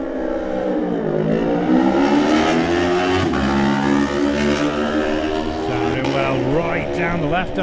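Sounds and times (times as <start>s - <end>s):
supersport racing motorcycles setting off at the start of a race: 0.0s - 7.6s.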